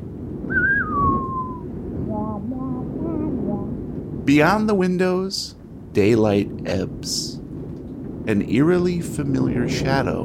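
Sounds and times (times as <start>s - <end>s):
steady low rumble of gusting air: 0.0s - 10.2s
wind whistling against the eaves of an old house: 0.0s - 10.2s
speech: 4.3s - 7.4s, 8.2s - 10.2s.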